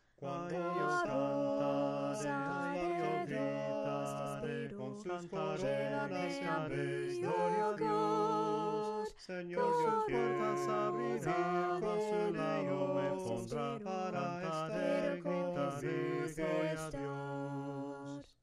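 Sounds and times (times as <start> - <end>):
a cappella hymn singing: 0.2 - 18.3.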